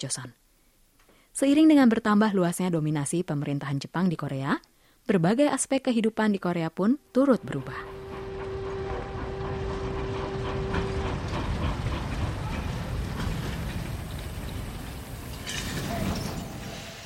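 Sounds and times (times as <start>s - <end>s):
speech: 0.0s - 0.4s, 1.4s - 7.9s
tonal hum: 7.3s - 13.2s
train rolling along the tracks: 7.4s - 17.0s.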